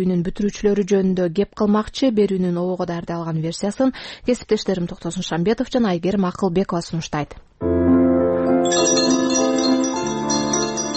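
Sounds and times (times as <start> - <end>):
speech: 0.0 - 7.8, 8.6 - 9.4
school bell ringing for the last day of the school year: 8.6 - 10.9.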